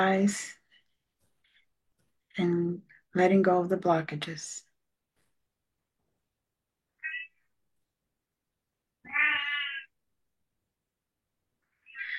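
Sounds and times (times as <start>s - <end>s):
speech: 0.0s - 0.6s, 2.4s - 4.7s
cat meowing: 7.0s - 7.3s, 9.0s - 9.9s.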